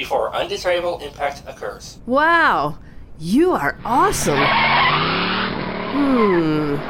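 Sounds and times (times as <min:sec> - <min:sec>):
speech: 0:00.0 - 0:05.1, 0:06.0 - 0:06.8
car tires skidding while driving: 0:03.8 - 0:06.8.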